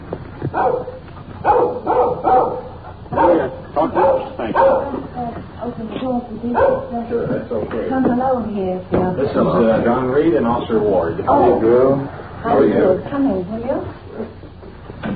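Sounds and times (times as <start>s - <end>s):
small dog barking and yipping: 0.5s - 5.1s, 6.5s - 7.0s
speech: 6.5s - 13.9s.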